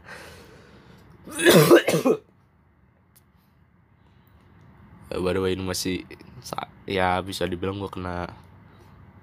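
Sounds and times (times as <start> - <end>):
speech: 1.3 - 2.2, 5.3 - 8.5
person coughing: 1.3 - 2.3.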